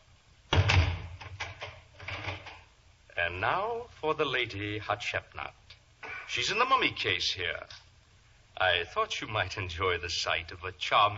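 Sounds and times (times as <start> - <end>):
door shutting with a heavy thump: 0.5 - 2.6
speech: 3.2 - 5.6, 6.3 - 7.8, 8.6 - 11.1.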